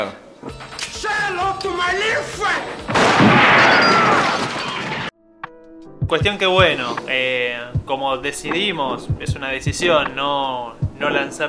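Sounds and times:
speech: 0.0s - 4.2s, 6.1s - 11.4s
gunfire in a Lugano neighborhood: 2.9s - 5.1s.

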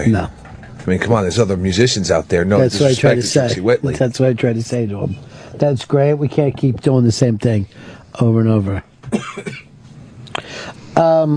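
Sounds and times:
speech: 0.0s - 9.6s, 11.0s - 11.3s
man coughing: 9.1s - 9.7s.

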